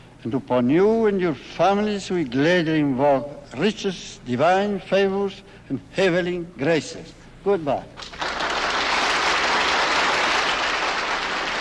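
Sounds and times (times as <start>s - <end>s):
speech: 0.2s - 8.2s
large crowd applauding in an assembly hall: 8.0s - 11.5s.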